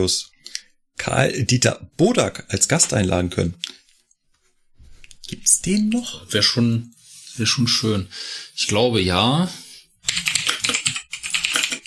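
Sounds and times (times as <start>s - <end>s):
speech: 0.0s - 0.3s, 1.0s - 3.8s, 5.3s - 10.3s
typing on a computer keyboard: 10.0s - 11.8s.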